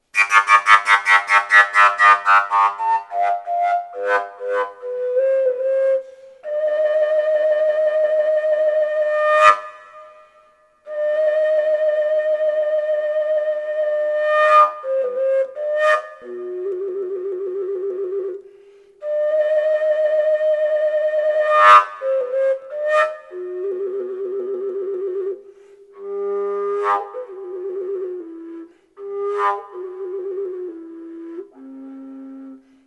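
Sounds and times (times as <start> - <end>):
collapsible fujara in G: 0.0 - 32.8.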